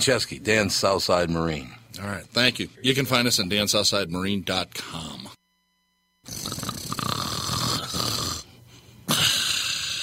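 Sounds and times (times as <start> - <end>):
speech: 0.0 - 5.3
loud rasping snoring: 6.2 - 8.5, 9.1 - 10.0.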